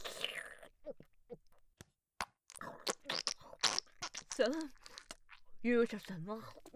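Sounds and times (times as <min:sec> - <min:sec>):
chewing and crunching while eating a home-cooked meal: 0:02.5 - 0:06.7
speech: 0:04.4 - 0:04.8, 0:05.6 - 0:06.7.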